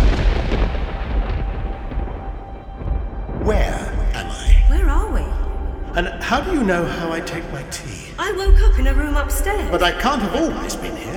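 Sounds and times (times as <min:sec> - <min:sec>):
spaceship warp core exploding in a science-fiction drama: 0:00.0 - 0:05.9
speech: 0:06.0 - 0:11.1.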